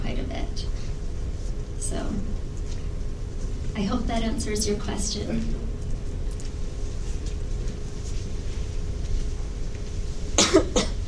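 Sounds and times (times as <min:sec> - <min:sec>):
low rumbling room noise: 0:00.0 - 0:11.0
speech: 0:03.8 - 0:05.6
person coughing: 0:10.4 - 0:11.0.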